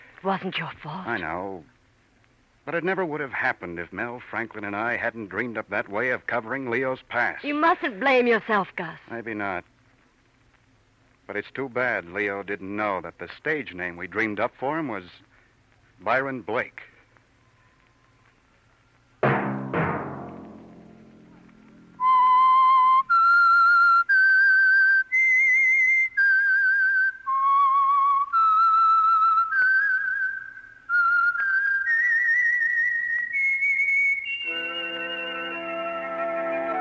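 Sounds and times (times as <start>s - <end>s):
speech: 0.2s - 1.8s, 2.6s - 9.7s, 11.3s - 15.3s, 16.0s - 16.9s
sharp struck hits: 19.2s - 21.4s
whistled program theme melody: 22.0s - 36.8s
orchestral chord: 34.5s - 36.8s.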